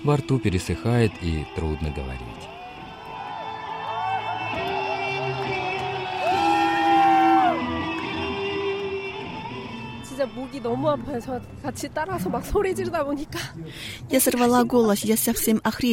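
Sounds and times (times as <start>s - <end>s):
speech: 0.0s - 2.6s, 10.2s - 15.9s
large rock festival crowd cheering and shouting: 1.1s - 11.4s.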